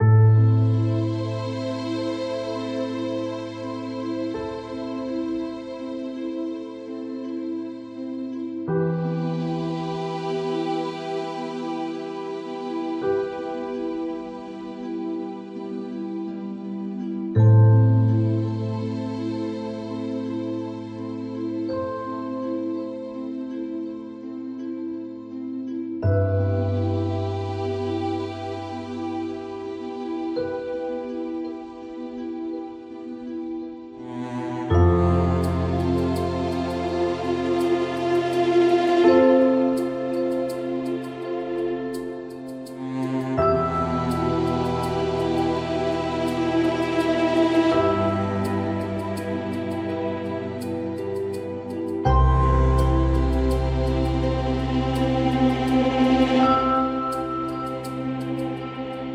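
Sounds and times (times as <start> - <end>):
melancholy ambient game music: 0.0 - 59.1.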